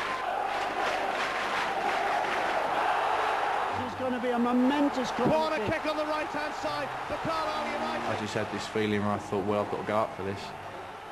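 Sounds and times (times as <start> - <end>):
large football crowd roaring and chanting at a football match: 0.0 - 11.1
speech: 4.0 - 10.6.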